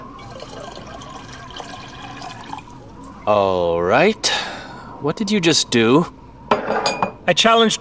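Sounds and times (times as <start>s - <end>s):
drinks being poured into cups: 0.0s - 3.0s
speech: 3.2s - 6.2s, 7.3s - 7.7s.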